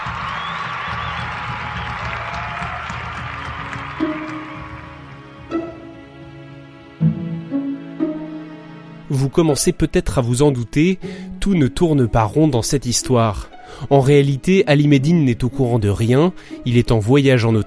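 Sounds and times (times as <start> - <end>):
large crowd cheering and applauding in Durrës Albania to welcome new sovereign: 0.0 - 6.3
speech: 9.2 - 17.6.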